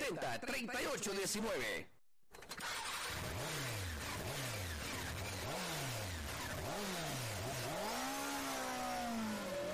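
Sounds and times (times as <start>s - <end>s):
speech: 0.1s - 2.0s
motorcycle engine revving: 2.6s - 9.7s.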